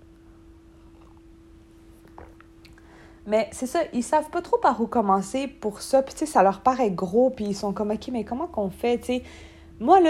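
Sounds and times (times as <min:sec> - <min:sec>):
steady low electrical hum: 0:00.0 - 0:10.0
sipping hot coffee with slurping and swallowing: 0:00.7 - 0:01.3
speech: 0:03.2 - 0:10.0.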